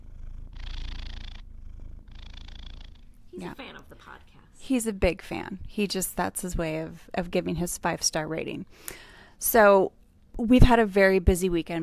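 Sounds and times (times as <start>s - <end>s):
cat purring loudly: 0.0s - 3.3s
speech: 3.3s - 11.8s.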